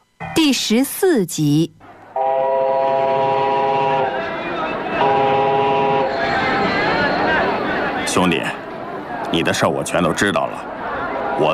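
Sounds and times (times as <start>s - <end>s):
speech: 0.4s - 1.9s, 9.3s - 10.8s, 11.4s - 11.5s
train horn blasts: 2.1s - 7.4s
train rumbling on rails: 2.2s - 10.0s.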